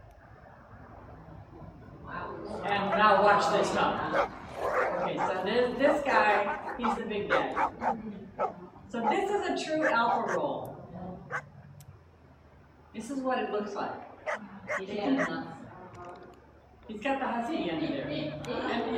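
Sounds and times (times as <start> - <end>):
speech: 3.0 - 4.4, 5.1 - 10.7, 13.0 - 15.6, 16.9 - 18.9
several dogs barking and yipping while playing: 4.0 - 10.5, 11.3 - 11.6, 14.1 - 15.4.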